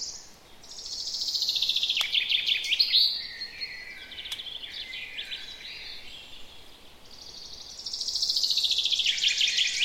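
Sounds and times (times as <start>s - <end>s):
common chaffinch Fringilla coelebs song: 0.0s - 9.8s.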